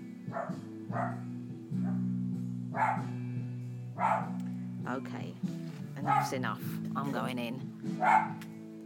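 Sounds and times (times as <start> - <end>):
speech: 0.3 - 1.9, 4.9 - 8.5
dog barking: 0.3 - 2.1, 2.7 - 3.1, 3.9 - 4.4, 6.0 - 6.4, 8.0 - 8.4.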